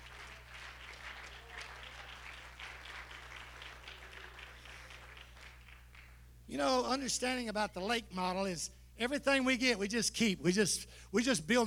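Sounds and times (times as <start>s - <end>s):
church congregation clapping: 0.0s - 6.3s
low electrical hum: 0.0s - 11.6s
speech: 6.5s - 11.6s.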